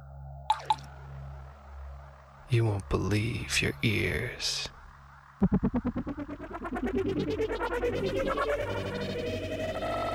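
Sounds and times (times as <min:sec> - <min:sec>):
water drips: 0:00.5 - 0:01.0
steady low hum: 0:00.7 - 0:10.1
speech: 0:02.5 - 0:04.8, 0:05.4 - 0:10.1.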